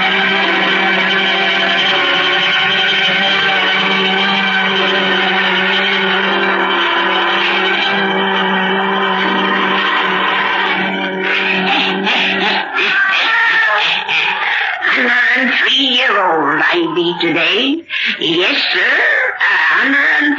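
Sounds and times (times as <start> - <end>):
eerie sustained tones: 0.0 - 20.3
laughter: 0.0 - 20.3
black cat yowling: 10.2 - 15.7
speech: 17.8 - 19.1.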